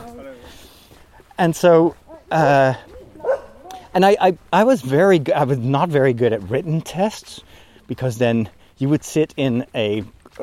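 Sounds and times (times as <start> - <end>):
speech: 1.4 - 2.9, 3.9 - 10.4
dog barking: 2.9 - 3.8.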